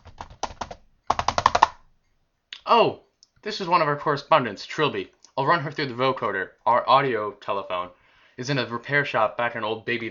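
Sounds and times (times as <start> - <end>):
keyboard typing a telex message: 0.0 - 1.9
speech: 2.7 - 10.0.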